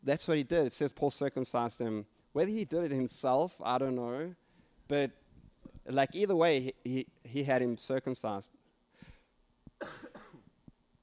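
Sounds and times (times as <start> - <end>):
speech: 0.0 - 5.2, 5.8 - 9.1
faint short cough set off by laughter: 9.8 - 10.6.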